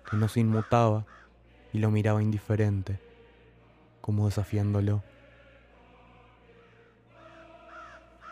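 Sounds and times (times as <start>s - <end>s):
crow cawing: 0.0s - 1.4s, 7.6s - 8.3s
speech: 0.1s - 3.0s, 4.0s - 5.1s.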